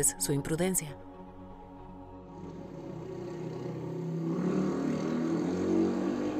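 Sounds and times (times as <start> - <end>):
speech: 0.0 - 1.1
cars passing at high speed: 2.4 - 6.3.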